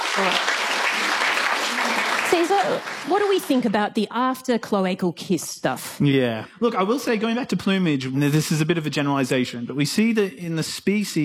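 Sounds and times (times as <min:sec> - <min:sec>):
applause for a guest: 0:00.0 - 0:03.8
speech: 0:00.2 - 0:00.5, 0:02.4 - 0:11.2.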